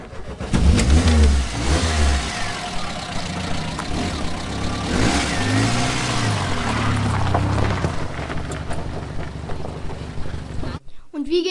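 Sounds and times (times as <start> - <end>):
car engine revving and pulling away across a frozen natural ice lake: 0.0 - 10.8.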